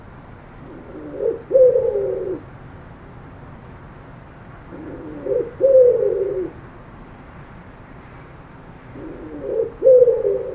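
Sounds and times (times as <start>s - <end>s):
bird cooing: 0.6s - 2.5s, 4.7s - 6.6s, 8.9s - 10.5s.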